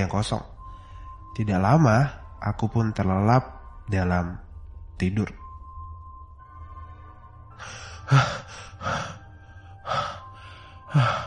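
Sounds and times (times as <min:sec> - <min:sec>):
speech: 0:00.0 - 0:00.5, 0:01.4 - 0:04.4, 0:05.0 - 0:05.4, 0:07.6 - 0:09.2, 0:10.9 - 0:11.2
person panting heavily after waking from a nightmare: 0:07.5 - 0:11.2.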